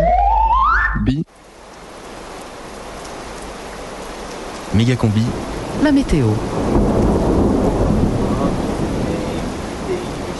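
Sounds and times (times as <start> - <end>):
heavy rain in a thunderstorm: 0.0 - 10.3
speech: 1.0 - 1.3, 4.8 - 6.9
deep rumble of thunder: 4.9 - 10.3.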